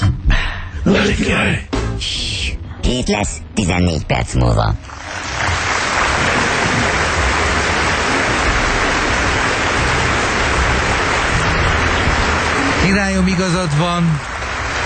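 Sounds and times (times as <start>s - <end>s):
speech: 0.9s - 2.3s, 2.9s - 5.3s, 12.9s - 14.3s
person urinating in a splashing stream: 4.8s - 14.8s.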